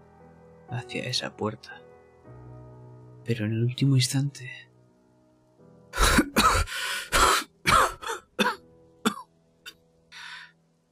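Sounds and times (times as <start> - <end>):
speech: 0.7 - 1.9, 3.2 - 4.7
person coughing: 6.0 - 9.3
soft breath: 10.1 - 10.6.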